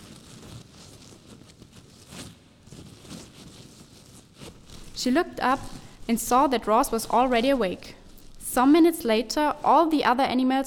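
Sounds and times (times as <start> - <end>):
dry leaves rustling and crackling in a forest: 0.0 - 8.4
speech: 5.0 - 10.6.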